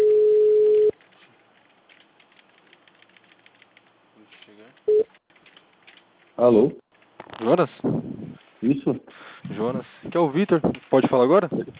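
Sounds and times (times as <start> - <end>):
telephone ringing tone as a call is placed: 0.0 - 0.9, 4.9 - 5.1
faint noise: 0.0 - 11.7
speech: 6.4 - 6.8, 7.4 - 11.7.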